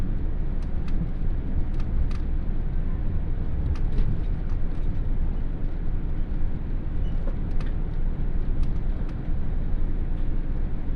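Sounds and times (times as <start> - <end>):
steady low rumble inside a moving Hokuto 16 express train: 0.0 - 10.9.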